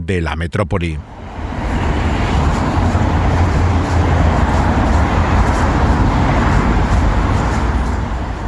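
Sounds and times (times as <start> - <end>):
engines and road noise of dense street traffic in central London: 0.0 - 8.4
speech: 0.1 - 1.2
low rumbling vehicles passing in central London: 0.8 - 8.4.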